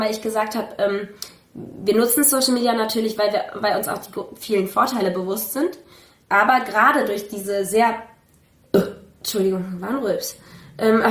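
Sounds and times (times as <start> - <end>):
speech: 0.0 - 8.1, 8.7 - 11.0
woman burping: 8.7 - 9.1.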